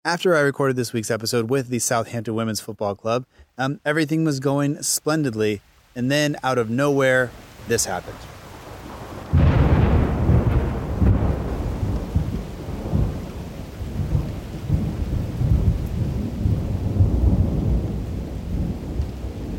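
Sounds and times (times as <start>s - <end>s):
speech: 0.0s - 8.4s
steady heavy rain hissing: 3.1s - 19.5s
loud crack of thunder rolling in deep rumbling waves: 7.0s - 19.5s.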